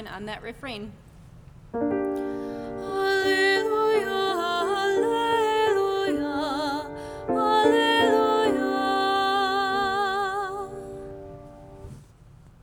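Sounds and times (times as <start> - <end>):
soprano singing for Easter: 1.8 - 11.9.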